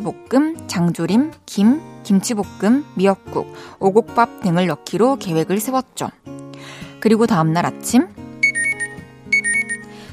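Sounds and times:
speech: 0.0s - 8.2s
alarm clock ringing with a bright electronic melody: 8.4s - 9.8s.

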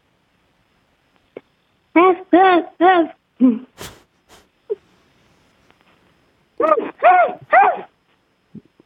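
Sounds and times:
child imitating a large dog barking: 2.0s - 3.2s, 6.6s - 7.9s.

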